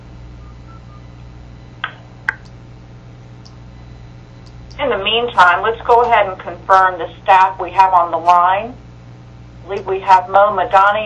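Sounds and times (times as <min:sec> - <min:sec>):
steady low hum: 0:00.0 - 0:11.0
telephone keypad electronic beeps while dialing: 0:00.4 - 0:01.0
speech: 0:04.8 - 0:08.8, 0:09.7 - 0:11.0.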